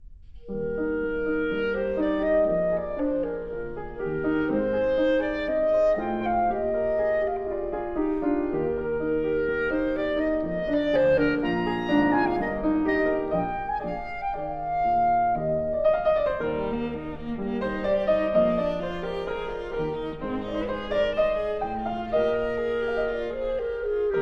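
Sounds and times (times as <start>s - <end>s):
chamber trio for clarinet viola and piano: 0.3s - 24.2s.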